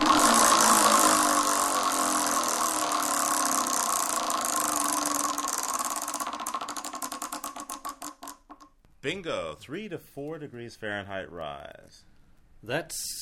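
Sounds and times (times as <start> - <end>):
prize wheel spinning with clicking rattle: 0.0 - 8.6
speech: 9.1 - 13.2.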